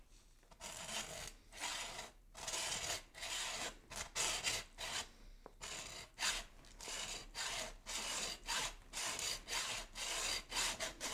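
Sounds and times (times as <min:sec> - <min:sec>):
sawing a leg bone: 0:00.7 - 0:11.1.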